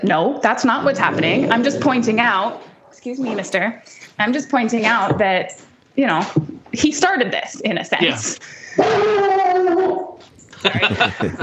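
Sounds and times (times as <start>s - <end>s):
speech: 0.0s - 10.0s, 10.6s - 11.4s
dog whining: 0.9s - 3.9s, 8.8s - 10.6s
laughter: 8.0s - 9.4s, 10.3s - 11.4s.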